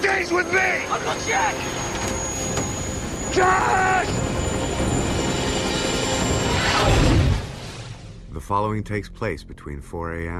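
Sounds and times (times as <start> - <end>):
speech: 0.0 - 2.1, 3.4 - 4.4, 8.4 - 10.3
helicopter flying low through the night: 0.0 - 7.8.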